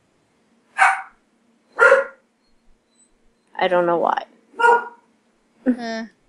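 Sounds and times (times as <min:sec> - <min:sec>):
dogs barking: 0:00.8 - 0:01.2, 0:01.8 - 0:02.2, 0:04.6 - 0:05.1
speech: 0:03.6 - 0:04.8, 0:05.6 - 0:06.2.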